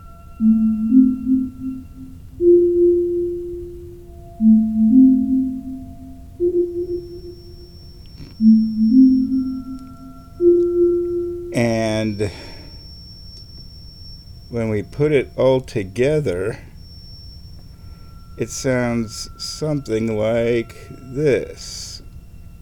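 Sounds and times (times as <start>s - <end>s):
faint high sustained synth tone: 0.0s - 22.6s
speech: 0.4s - 1.3s, 15.0s - 16.7s, 18.4s - 21.9s
synth counterpoint arpeggio with pure sine-like tones: 0.4s - 12.0s.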